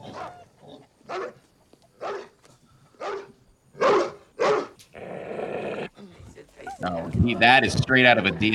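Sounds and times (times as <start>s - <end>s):
dog barking: 1.1s - 1.4s, 2.0s - 2.4s, 3.0s - 4.8s
speech: 6.8s - 8.5s.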